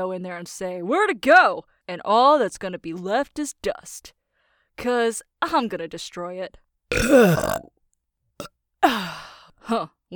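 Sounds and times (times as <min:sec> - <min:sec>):
speech: 0:00.0 - 0:04.2, 0:04.8 - 0:07.7, 0:09.7 - 0:10.1
loud low fart in an elevator: 0:06.9 - 0:07.6.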